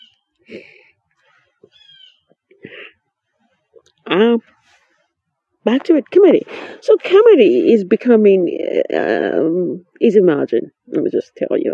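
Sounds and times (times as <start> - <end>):
brief chirpy bird notes: 0.0 - 0.3
bird calling: 0.0 - 2.4
speech: 0.5 - 0.8, 4.1 - 4.5, 5.6 - 11.7.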